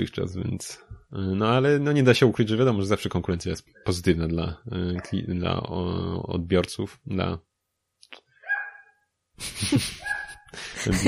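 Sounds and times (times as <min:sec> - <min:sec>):
speech: 0:00.0 - 0:07.5, 0:09.4 - 0:11.0
small dog barking: 0:08.4 - 0:09.0
laughter: 0:09.4 - 0:11.0.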